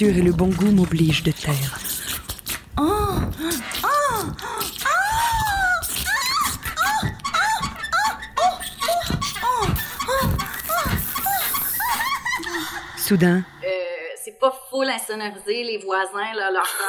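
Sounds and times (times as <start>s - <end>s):
speech: 0.0s - 1.9s, 2.8s - 3.7s, 13.1s - 13.5s, 14.8s - 16.8s
person acting out exaggerated cries of pleasure and moaning: 2.8s - 7.0s
laughter: 4.9s - 13.3s.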